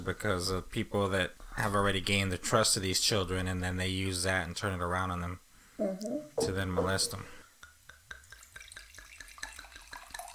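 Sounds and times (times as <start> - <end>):
speech: 0.0 - 7.4
drink being poured: 8.1 - 10.3.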